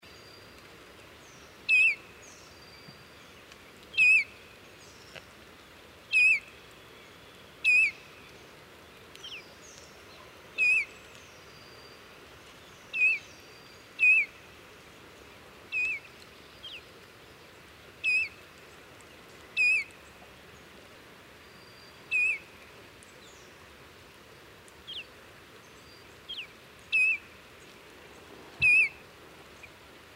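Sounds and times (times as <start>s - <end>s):
brown bullfinch in Yushan National Park: 1.7s - 2.0s, 3.9s - 4.4s, 6.1s - 6.5s, 7.6s - 8.0s, 10.1s - 12.0s, 12.9s - 14.4s, 15.7s - 16.8s, 18.0s - 18.4s, 19.6s - 20.0s, 21.6s - 22.5s, 25.8s - 27.3s, 28.6s - 29.0s.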